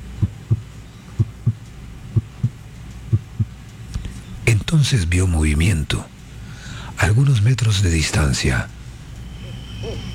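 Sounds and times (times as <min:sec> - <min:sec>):
heartbeat: 0:00.0 - 0:03.6
faint hum: 0:00.0 - 0:10.1
speech: 0:04.7 - 0:06.1, 0:07.0 - 0:08.8.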